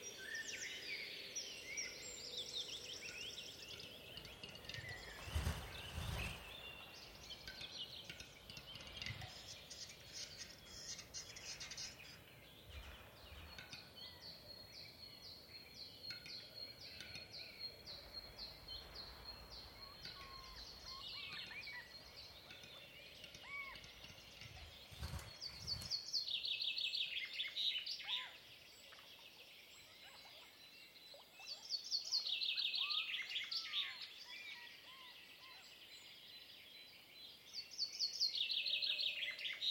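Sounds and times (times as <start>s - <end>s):
birdsong chirps and trills in wilderness of Sweden and Norway: 0.0s - 39.6s
quiet rustle: 4.2s - 13.2s, 18.1s - 26.4s.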